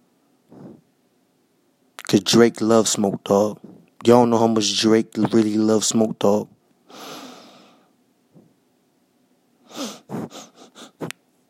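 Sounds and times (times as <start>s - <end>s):
person exhaling with one long airy exhale: 0.5s - 0.8s, 6.9s - 7.9s, 9.7s - 11.1s
person sniffing like a dog: 0.5s - 0.9s, 6.9s - 7.8s, 9.7s - 11.2s
speech: 2.1s - 7.1s.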